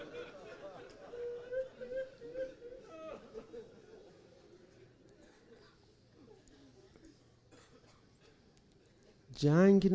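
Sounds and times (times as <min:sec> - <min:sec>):
several people weeping and moaning at a gathering: 0:00.0 - 0:04.1
laughter: 0:00.0 - 0:05.5
speech: 0:09.4 - 0:09.9.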